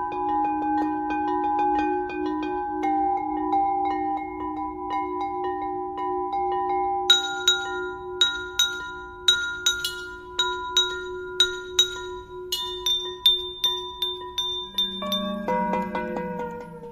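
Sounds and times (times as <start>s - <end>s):
bright glass clinks in a sound installation: 0.0s - 16.9s
sustained ringing drone in an electronic music performance: 0.0s - 16.9s.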